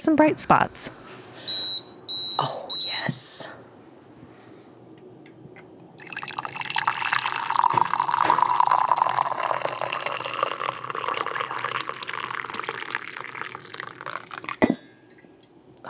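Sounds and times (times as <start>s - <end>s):
speech: 0.0s - 1.2s, 2.4s - 3.6s
coffee pouring into a cup: 6.0s - 14.8s.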